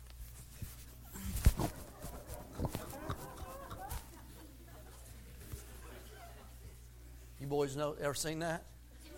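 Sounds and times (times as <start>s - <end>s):
laughter: 1.6s - 6.9s
person imitating a dog lapping water with wet clicking mouth sounds: 2.4s - 4.1s
speech: 7.5s - 8.7s.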